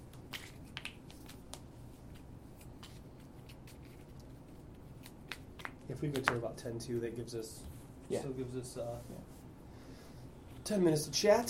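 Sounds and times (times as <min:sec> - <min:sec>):
deck of cards being riffle shuffled: 0:00.1 - 0:06.4
speech: 0:05.9 - 0:09.4, 0:10.7 - 0:11.4.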